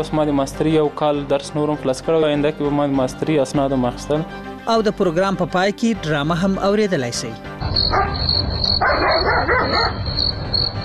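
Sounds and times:
speech: 0:00.0 - 0:10.8
steady high cricket trill: 0:07.6 - 0:10.8
dog barking at night: 0:07.9 - 0:10.1.

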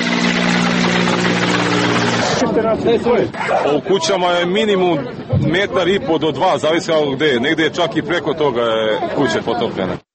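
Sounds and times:
rescue helicopter engine and rotor drone during floods in Serbia: 0:00.0 - 0:03.1
speech: 0:02.6 - 0:10.1.

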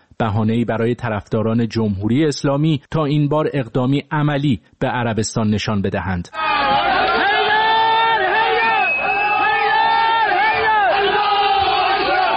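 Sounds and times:
speech: 0:00.2 - 0:06.7
crowd of attackers cheering during embassy attack: 0:06.4 - 0:12.3.

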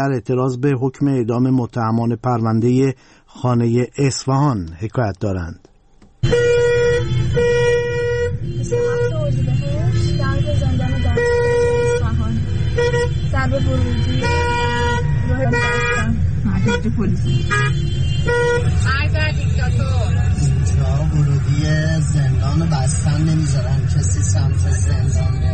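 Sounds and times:
speech: 0:00.0 - 0:06.4, 0:16.7 - 0:20.1, 0:21.6 - 0:25.5
engines rumbling in a traffic jam: 0:00.0 - 0:25.5
car horns honking in a traffic jam: 0:06.2 - 0:25.5.

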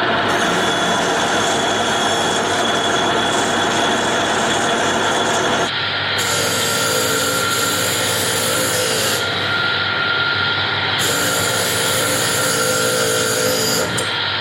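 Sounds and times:
power tool grinding a wooden model motorcycle rear wheel: 0:00.1 - 0:14.2.

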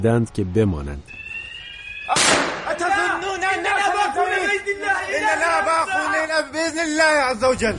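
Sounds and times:
speech: 0:00.0 - 0:01.2, 0:04.7 - 0:07.7
single loud sharp gunshot during an armed attack: 0:02.1 - 0:02.8
agitated voices shouting and talking over each other: 0:02.1 - 0:06.6.

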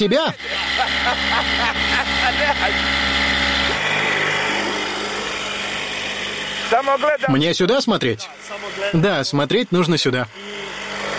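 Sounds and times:
laughter: 0:00.0 - 0:03.0
speech: 0:00.0 - 0:03.3, 0:06.7 - 0:10.6
motorboat engine droning: 0:00.0 - 0:11.1.

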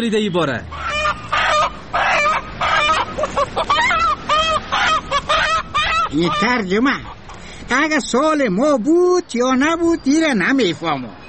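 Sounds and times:
speech: 0:00.0 - 0:00.8, 0:06.1 - 0:11.2
chicken clucking and squawking: 0:00.7 - 0:07.4.

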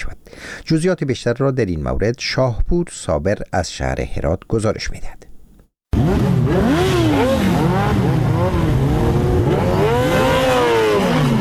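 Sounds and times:
speech: 0:00.7 - 0:05.3
several heavy motorcycle exhausts revving hard: 0:05.9 - 0:11.3.

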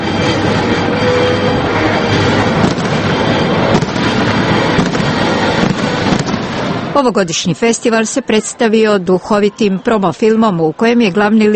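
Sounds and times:
traditional fireworks display crackling and booming: 0:00.0 - 0:07.7
speech: 0:07.0 - 0:11.5.

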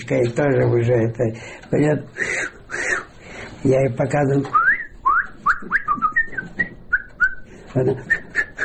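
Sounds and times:
speech: 0:00.1 - 0:02.6, 0:03.6 - 0:04.6, 0:07.7 - 0:08.2
man whistling a quick run of short clear notes: 0:04.5 - 0:08.6.

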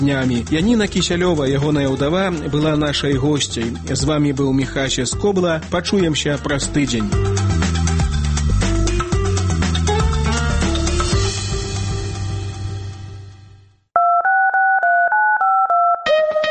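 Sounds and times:
speech: 0:00.0 - 0:07.4
music: 0:00.0 - 0:13.9, 0:15.6 - 0:16.4
touch-tone beeps of a telephone number being dialed: 0:14.0 - 0:16.0.

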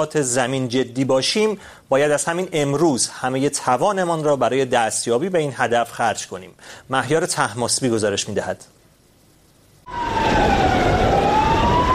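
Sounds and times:
speech: 0:00.0 - 0:08.8
emergency siren wailing: 0:09.9 - 0:11.9.

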